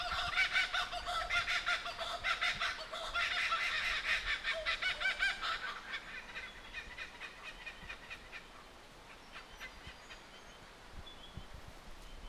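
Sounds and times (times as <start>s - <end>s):
several kookaburras laughing in the Victorian bush, Australia: 0.0s - 8.4s.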